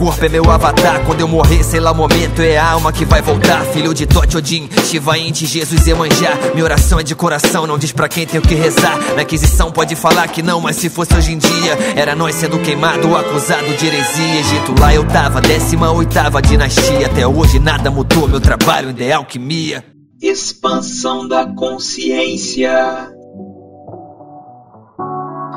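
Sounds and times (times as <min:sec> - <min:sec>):
dense rap beat with heavy bass: 0:00.0 - 0:11.8, 0:14.7 - 0:18.9
person rapping with a rapid rhythmic vocal flow: 0:00.0 - 0:23.1
speech: 0:00.0 - 0:23.2.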